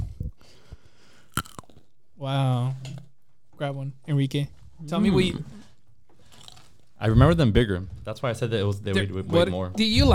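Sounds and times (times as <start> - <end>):
crisp bite into a thumb-sized whole fruit with skin: 1.3 - 1.9, 6.3 - 6.8
soft low thumps of chewing: 1.4 - 1.9, 6.2 - 6.9
speech: 2.2 - 3.0, 3.6 - 5.6, 7.0 - 10.1.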